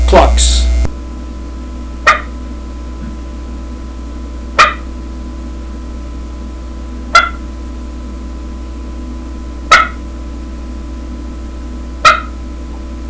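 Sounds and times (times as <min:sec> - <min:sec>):
turkey call clucks for turkey hunting: 0:02.1 - 0:02.3, 0:04.6 - 0:04.9, 0:07.2 - 0:07.4, 0:09.7 - 0:10.0, 0:12.0 - 0:12.4.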